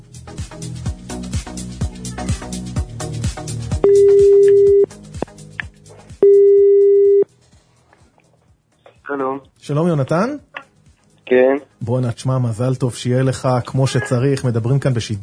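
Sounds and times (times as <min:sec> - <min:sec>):
rhythmic music: 0:00.1 - 0:06.5
telephone ringback tone in a live radio studio: 0:03.8 - 0:04.9, 0:06.2 - 0:07.2
speech: 0:09.4 - 0:10.5, 0:11.3 - 0:15.2.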